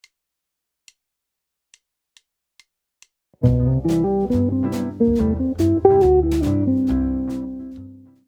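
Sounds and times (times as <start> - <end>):
minor jazz guitar lick: 3.4 - 8.0.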